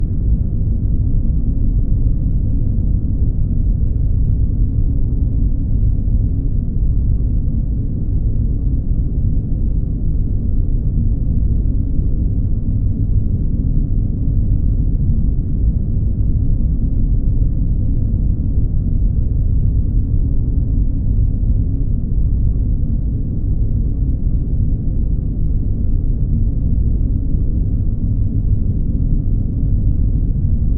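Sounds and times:
hollow sub air drone, industrial ambience: 0.0s - 30.7s.

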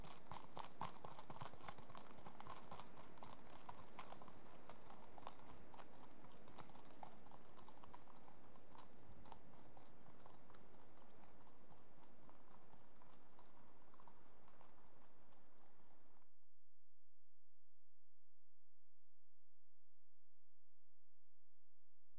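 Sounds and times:
two horses' hooves trotting: 0.0s - 16.2s.

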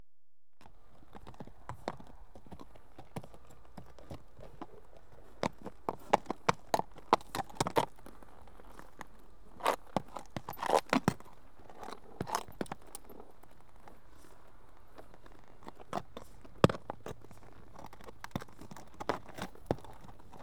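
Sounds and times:
one horse walking on approach: 0.6s - 20.4s.

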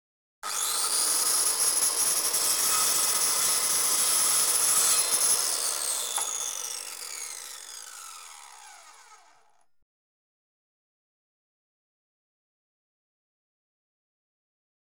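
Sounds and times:
household electric circular saw: 0.4s - 9.7s.

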